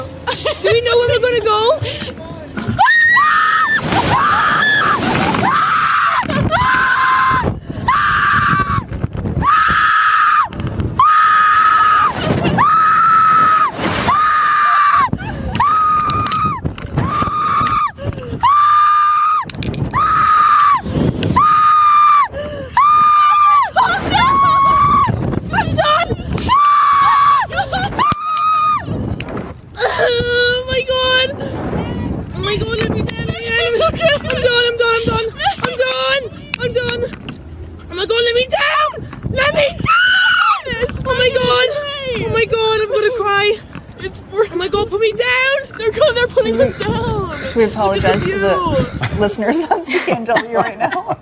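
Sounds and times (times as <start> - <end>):
heavy wind rush on a high-speed slingshot ride: 0.0 - 51.1
speech: 0.6 - 2.2
soccer players screaming on a slingshot ride at an amusement park: 2.7 - 28.9, 39.7 - 40.7
laughter: 46.3 - 51.1.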